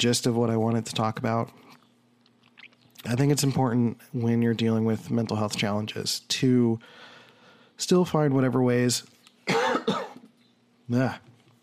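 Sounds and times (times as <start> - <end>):
speech: 0.0 - 1.7, 3.0 - 7.1, 7.8 - 9.2, 10.9 - 11.3
person coughing with oatmeal stuck in the throat: 9.4 - 10.3
person clearing throat after eating oatmeal: 9.5 - 10.3.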